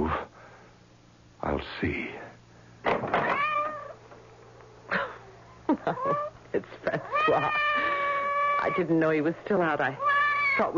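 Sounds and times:
faint low hum: 0.0 - 10.7
speech: 1.8 - 2.2, 8.8 - 10.7
soaking wet cat meowing at the front door: 3.2 - 4.0, 7.0 - 8.9, 10.0 - 10.7.

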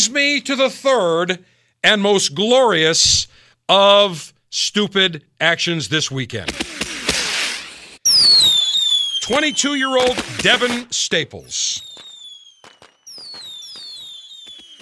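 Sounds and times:
speech: 0.0 - 6.8, 9.3 - 12.0
fireworks bangs and crackles: 6.5 - 14.8
shrill whistling firework rocket: 6.6 - 14.8.

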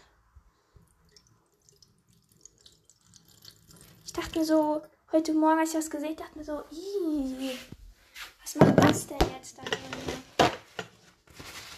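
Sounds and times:
water dripping: 0.0 - 4.9
water poured off from a container: 0.6 - 4.8
speech: 4.2 - 7.8, 8.5 - 10.1.

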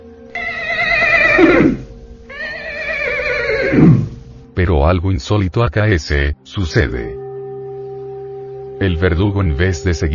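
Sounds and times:
horse neighing with shrill quavering whinny and snorting rumble: 0.4 - 4.3
speech: 4.6 - 7.2, 8.8 - 10.1.

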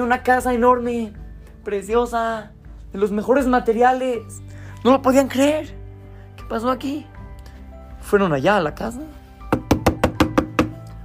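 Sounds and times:
speech: 0.0 - 5.8, 6.5 - 7.1, 8.0 - 9.2
firm knocking on a wooden door: 9.5 - 10.8.

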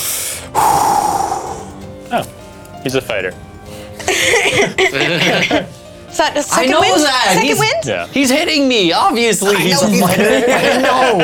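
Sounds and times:
voice imitating taking a big breath: 0.0 - 1.9
speech: 2.1 - 3.5, 4.1 - 11.2
laughter: 4.0 - 5.8, 9.8 - 11.2.

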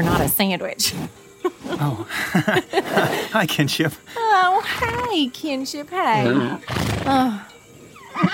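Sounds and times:
horse snorting: 0.0 - 1.9, 4.6 - 5.2, 6.2 - 7.2
speech: 0.0 - 7.5, 8.2 - 8.3
laughter: 1.4 - 3.6
horse whinnying: 4.6 - 5.2, 6.2 - 7.3, 7.9 - 8.3.

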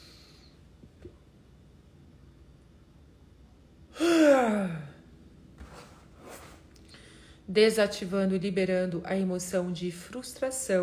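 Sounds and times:
deep breath in and out during a guided meditation: 6.9 - 7.5
speech: 7.5 - 10.8.

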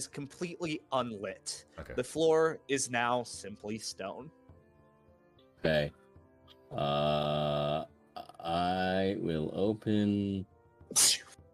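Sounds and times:
speech: 0.0 - 4.4, 5.6 - 6.0, 6.7 - 11.2
sneeze: 10.9 - 11.4.

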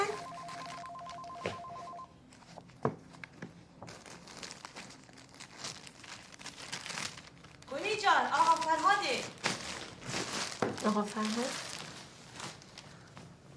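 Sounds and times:
telephone ringing with a bell-like tone: 0.0 - 2.2
soft rustling and crinkling handling sounds: 0.2 - 13.5
speech: 10.8 - 11.7.

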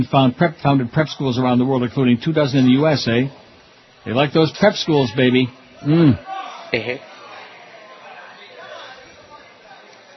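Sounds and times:
speech: 0.0 - 3.4, 4.0 - 7.1
many voices shouting and chattering while watching a horse race: 3.2 - 10.1.

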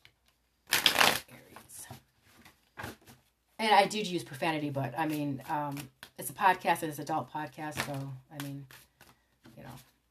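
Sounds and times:
deck of cards shuffled for a sun-sign reading: 0.2 - 3.3, 5.0 - 6.2, 7.7 - 10.0
speech: 3.6 - 8.8.

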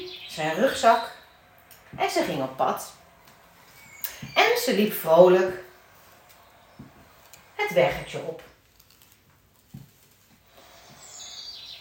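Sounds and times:
birds chirping and singing in twittering calls: 0.0 - 8.3, 10.6 - 11.7
speech: 0.4 - 1.2, 1.9 - 3.0, 4.3 - 5.6, 7.6 - 8.5
faint low thuds: 1.1 - 8.2.

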